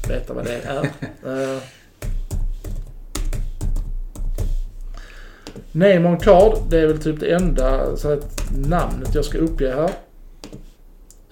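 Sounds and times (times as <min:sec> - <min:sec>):
speech: 0:00.1 - 0:01.8, 0:05.7 - 0:10.0
laughter: 0:00.4 - 0:01.3
typing a card number on a computer keyboard: 0:02.0 - 0:05.6, 0:06.2 - 0:10.7.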